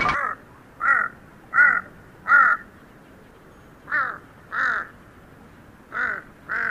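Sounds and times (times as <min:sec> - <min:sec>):
huge Tibetan crow cawing in a high field: 0:00.2 - 0:02.7, 0:03.9 - 0:05.0, 0:05.9 - 0:06.6.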